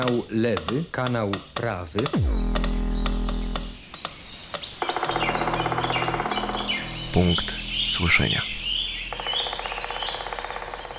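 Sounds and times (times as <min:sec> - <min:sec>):
speech: 0:00.0 - 0:02.7, 0:07.2 - 0:08.6
rapid steady trill of repeated bird chirps in early spring: 0:02.2 - 0:10.9
thin high bird whistles outdoors in early spring: 0:03.7 - 0:10.9.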